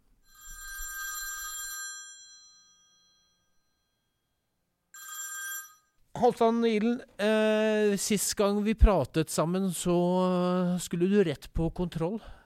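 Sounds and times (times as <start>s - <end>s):
telephone bell ringing: 0.2s - 4.2s, 4.9s - 6.0s
speech: 6.2s - 12.4s.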